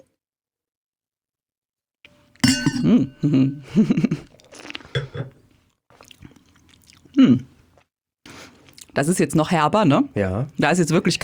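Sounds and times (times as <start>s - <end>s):
wine glasses clinking: 2.4s - 3.6s
speech: 2.8s - 4.3s, 7.2s - 7.5s, 9.0s - 11.2s
slurping and sipping mouth sounds as wine is tasted: 4.2s - 8.9s.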